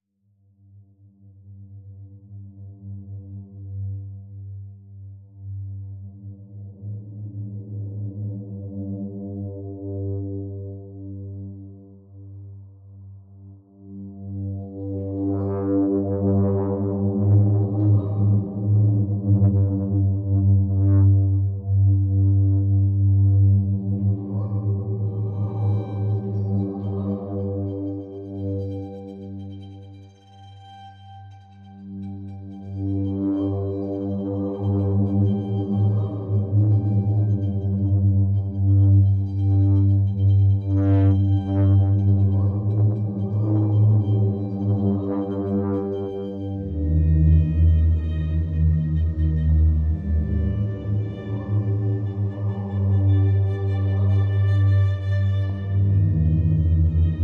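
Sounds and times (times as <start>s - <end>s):
synth pads: 13.9s - 30.1s, 31.9s - 57.2s
strings: 14.7s - 57.2s.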